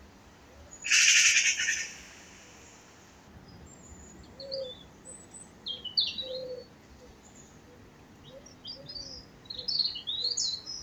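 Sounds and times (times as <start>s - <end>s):
Eurasian magpie Pica pica grating machine-gun-like chatter: 0.9s - 2.6s.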